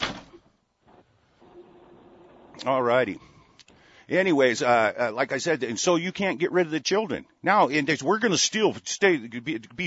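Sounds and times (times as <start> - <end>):
door swinging shut with a sharp thud: 0.0 - 2.7
speech: 2.6 - 3.3, 4.1 - 9.8.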